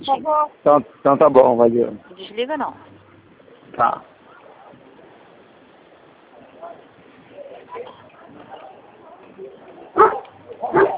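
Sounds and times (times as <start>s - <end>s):
speech: 0.0s - 2.9s, 3.7s - 4.1s
low murmur: 0.0s - 10.9s
dog barking: 10.0s - 10.9s.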